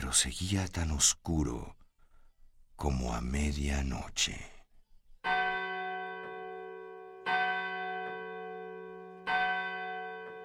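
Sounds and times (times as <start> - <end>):
speech: 0.1 - 1.8, 2.8 - 4.6
church bell tolling the hour: 5.2 - 10.4.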